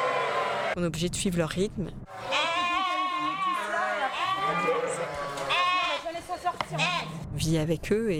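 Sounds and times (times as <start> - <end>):
speech: 0.8 - 2.2, 6.7 - 8.1
ewe bleating: 2.1 - 7.2.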